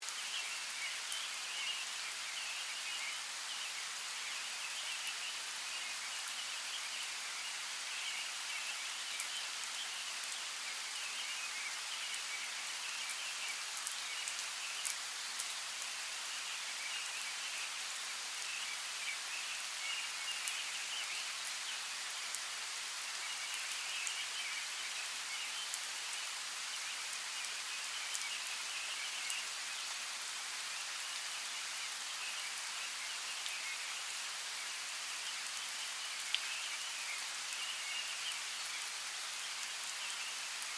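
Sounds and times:
light rain in a forest: 0:00.0 - 0:40.7.

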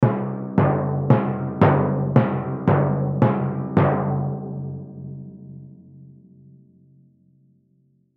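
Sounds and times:
timpani hits in a dread doom musical sequence: 0:00.0 - 0:05.2.

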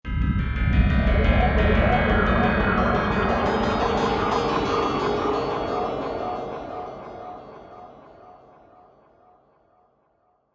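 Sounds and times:
mysterious synth stab: 0:00.1 - 0:08.9.

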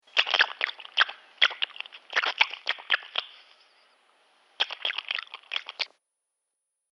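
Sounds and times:
dog lapping: 0:00.0 - 0:03.5, 0:04.6 - 0:05.9.

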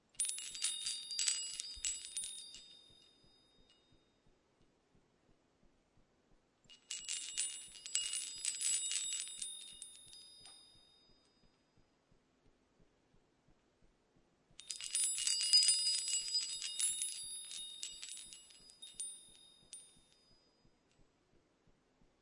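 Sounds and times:
wind chimes tinkling: 0:00.2 - 0:03.8, 0:06.7 - 0:11.4, 0:14.6 - 0:20.6.

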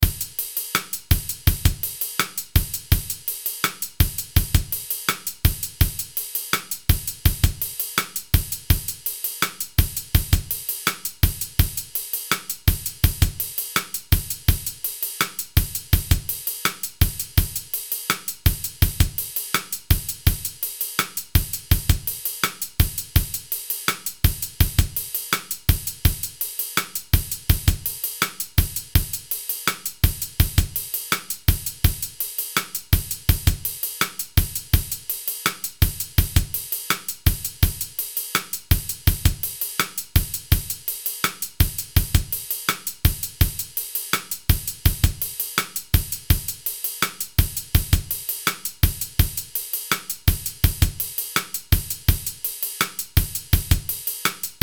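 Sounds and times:
down tempo R&B hip hop paradiddle drum beat loop: 0:00.0 - 0:54.6.

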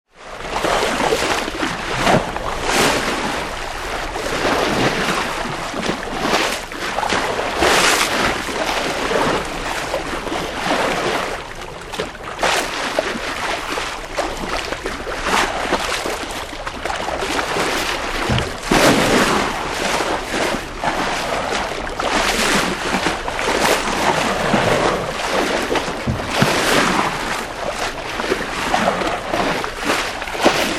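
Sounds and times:
stern wash of galleon tall ship under sail: 0:00.2 - 0:30.7.

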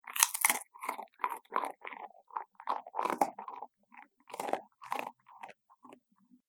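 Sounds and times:
dog eating biscuit: 0:00.0 - 0:06.0.

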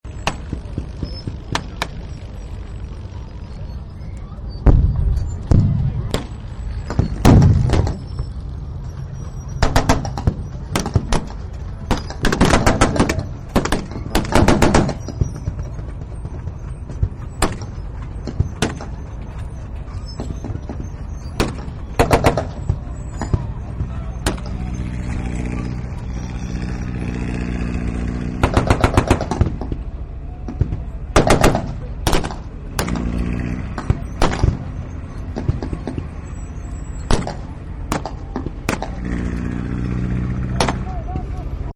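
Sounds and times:
battlefield war ambience: 0:00.0 - 0:41.7
field fire on a battlefield: 0:04.7 - 0:08.0, 0:09.6 - 0:15.1, 0:21.4 - 0:22.6, 0:28.4 - 0:29.8, 0:31.2 - 0:33.2, 0:33.8 - 0:34.7, 0:37.1 - 0:39.2, 0:40.6 - 0:40.8.

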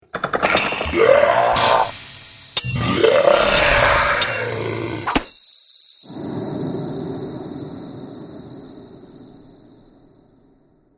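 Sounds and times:
fantasy battle scene sound effects: 0:00.2 - 0:05.3.

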